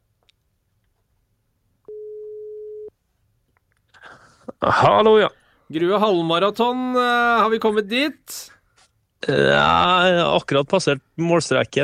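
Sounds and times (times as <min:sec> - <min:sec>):
quiet low hum: 0:00.0 - 0:11.8
telephone ringback tone of an outgoing call: 0:01.9 - 0:02.9
speech: 0:04.6 - 0:08.6, 0:09.2 - 0:11.8.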